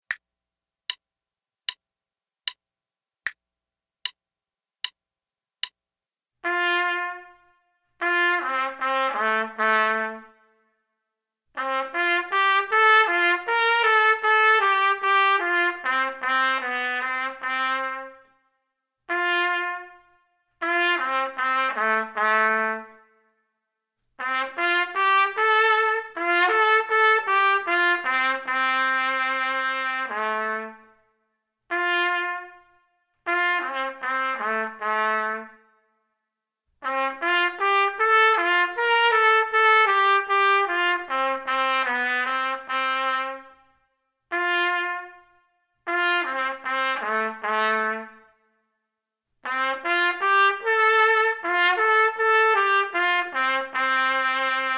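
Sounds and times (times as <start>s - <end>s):
trumpet playing a larghetto: 6.4s - 10.6s, 11.6s - 18.4s, 19.1s - 23.2s, 24.2s - 31.1s, 31.7s - 35.8s, 36.8s - 48.4s, 49.4s - 54.7s.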